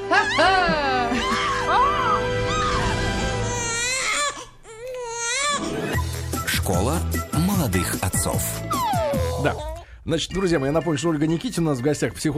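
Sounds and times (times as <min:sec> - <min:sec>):
baby crying: 0:00.1 - 0:06.0, 0:08.6 - 0:09.9
segment jingle musical backing: 0:06.0 - 0:08.8, 0:10.1 - 0:12.3
speech: 0:06.7 - 0:08.7, 0:09.4 - 0:12.3.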